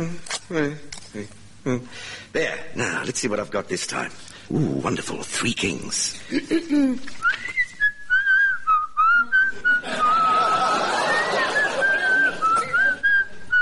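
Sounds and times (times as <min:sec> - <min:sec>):
speech: 0:00.0 - 0:07.5
woman whistling a tune: 0:07.2 - 0:10.3, 0:11.1 - 0:13.5
laughter: 0:09.6 - 0:13.5.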